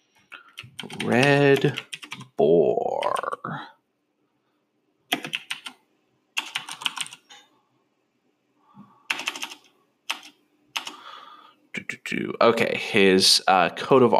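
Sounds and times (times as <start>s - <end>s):
typing on a computer keyboard: 0.4s - 2.4s, 5.1s - 5.8s, 6.4s - 7.4s, 9.1s - 11.0s
speech: 0.8s - 3.7s, 12.1s - 14.1s.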